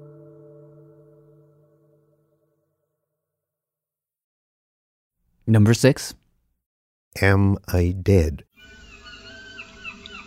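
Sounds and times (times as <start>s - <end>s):
speech: 5.5s - 6.2s, 7.1s - 8.5s
faint seagull cries at the edge of the English Channel: 8.6s - 10.2s.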